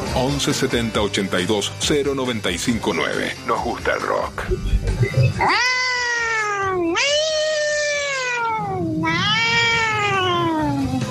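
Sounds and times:
speech: 0:00.1 - 0:05.8
kitten meowing with long wavering cries: 0:05.3 - 0:11.0.

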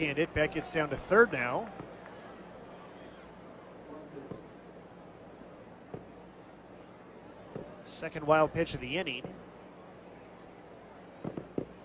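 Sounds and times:
speech: 0:00.0 - 0:01.9, 0:07.9 - 0:09.4
fireworks pops: 0:04.2 - 0:04.6, 0:05.8 - 0:06.2, 0:07.4 - 0:07.8, 0:08.7 - 0:09.5, 0:11.2 - 0:11.8.

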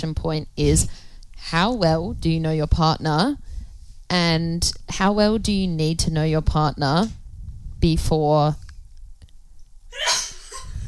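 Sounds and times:
speech: 0:00.0 - 0:03.4, 0:04.1 - 0:07.2, 0:07.8 - 0:08.6
rumbling background: 0:00.0 - 0:09.3
sneeze in a radio studio: 0:10.0 - 0:10.7.

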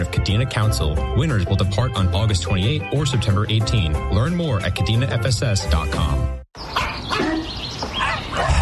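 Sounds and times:
speech: 0:00.0 - 0:06.4
dog barking in short yappy barks: 0:06.8 - 0:08.6.

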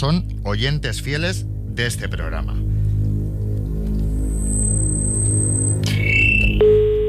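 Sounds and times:
speech: 0:00.0 - 0:02.6
steady low hum: 0:00.0 - 0:07.0
electronic telephone dialing and ringing tones: 0:06.4 - 0:07.0.

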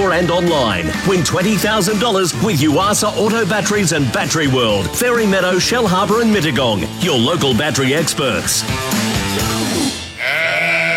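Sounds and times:
speech: 0:00.1 - 0:09.6
sheep bleating: 0:10.1 - 0:10.9.

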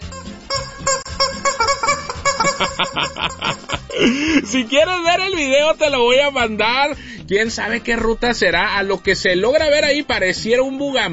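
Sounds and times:
yellow rubber chicken toy squeaking: 0:00.0 - 0:03.9
laughter: 0:02.3 - 0:04.7
speech: 0:02.6 - 0:11.1.

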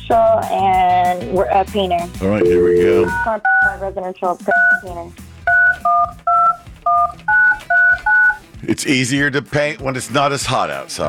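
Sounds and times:
speech: 0:00.1 - 0:05.2, 0:08.6 - 0:11.0
telephone keypad dialing tones: 0:02.4 - 0:03.8, 0:04.5 - 0:04.8, 0:05.5 - 0:08.4.

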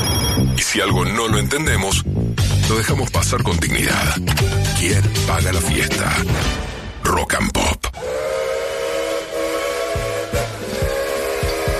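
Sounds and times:
speech: 0:00.6 - 0:08.3
steady train whistle: 0:08.0 - 0:11.7.

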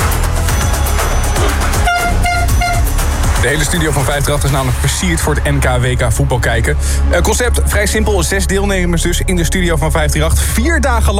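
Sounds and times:
loud sustained brassy horn blast: 0:00.4 - 0:03.4
speech: 0:03.4 - 0:11.1.

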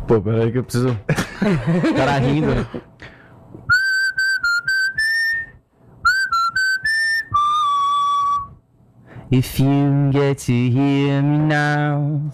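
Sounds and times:
speech: 0:00.1 - 0:03.1, 0:09.3 - 0:12.3
laughter: 0:01.1 - 0:02.9
man whistling a tune: 0:03.7 - 0:08.7.

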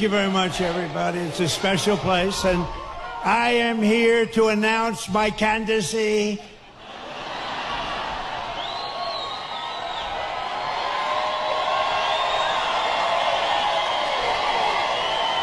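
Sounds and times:
large rally crowd cheering and shouting: 0:00.0 - 0:04.0, 0:06.6 - 0:15.4
speech: 0:00.0 - 0:06.5
sharp whistle: 0:08.6 - 0:10.2.

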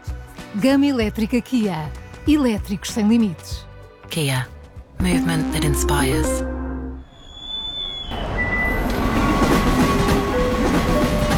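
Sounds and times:
speech: 0:00.5 - 0:06.5
train arriving at Termini station in Rome, wheels rumbling on rails: 0:08.2 - 0:11.3.

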